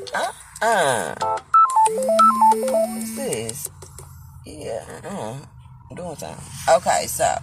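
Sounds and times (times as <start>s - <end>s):
speech: 0.1s - 3.7s, 4.5s - 7.4s
electronic phone tone beep of a caller phoning a restaurant: 1.5s - 3.3s.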